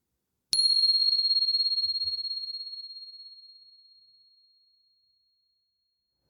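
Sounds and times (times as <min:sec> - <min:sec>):
meditation bell struck during metta meditation practice: 0:00.6 - 0:03.3.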